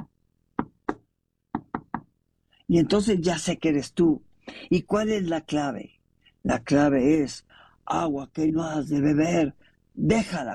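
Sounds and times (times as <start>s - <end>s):
knuckles rapping on a door in a patterned signal: 0.0s - 2.1s
speech: 2.7s - 10.5s.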